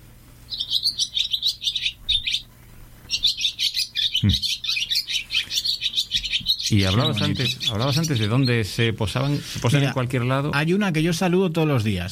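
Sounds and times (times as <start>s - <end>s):
several swallows singing: 0.5s - 2.5s, 3.1s - 10.4s
speech: 4.2s - 4.5s, 6.7s - 12.1s.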